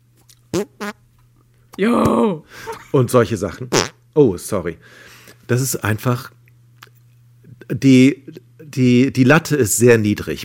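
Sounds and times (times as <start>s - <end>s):
fart-like blurts from air squeezed between cupped hands: 0.5s - 1.0s, 3.7s - 4.0s
speech: 1.8s - 6.4s, 7.7s - 10.4s.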